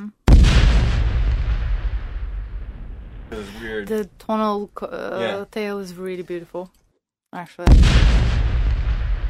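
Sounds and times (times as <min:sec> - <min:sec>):
PETN plastic explosive detonation with rumbling tail: 0:00.3 - 0:03.8, 0:07.6 - 0:09.2
speech: 0:03.3 - 0:08.4.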